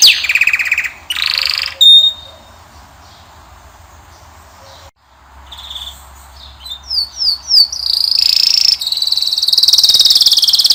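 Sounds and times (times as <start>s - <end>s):
male Belgian canary singing training song: 0.0s - 3.3s, 5.5s - 10.7s.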